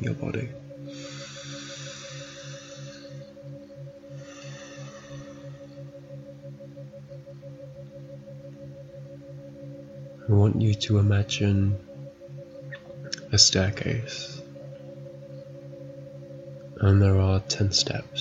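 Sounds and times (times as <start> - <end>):
speech: 0.0 - 1.2, 10.3 - 11.9, 13.4 - 14.4, 16.8 - 18.2
steady low musical drone: 0.0 - 18.2
deep inhale and exhale during a guided grounding meditation: 0.8 - 6.3.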